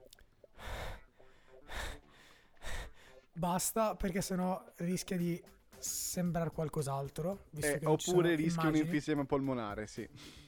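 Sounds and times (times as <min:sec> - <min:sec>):
deliberate heavy panting breaths: 0:00.5 - 0:03.4, 0:10.1 - 0:10.4
speech: 0:03.4 - 0:10.4.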